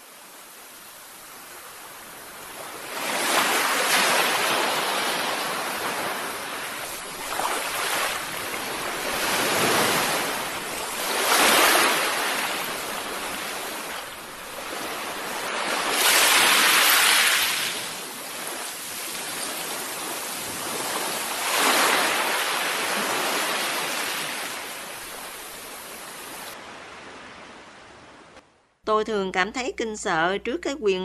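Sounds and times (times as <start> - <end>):
strong ocean waves crashing on rocks: 1.4 - 27.3
speech: 28.9 - 31.0.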